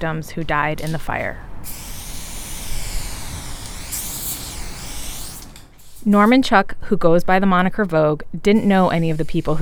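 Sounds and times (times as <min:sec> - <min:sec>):
speech: 0:00.0 - 0:01.9, 0:06.0 - 0:09.5
aerosol spray paint can spraying while painting a mural: 0:01.6 - 0:06.2.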